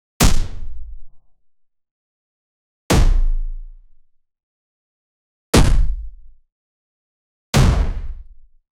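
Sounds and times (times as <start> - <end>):
solid punch landing with a sharp impact: 0.2 - 0.9, 2.9 - 3.7, 5.6 - 6.3, 7.6 - 8.4.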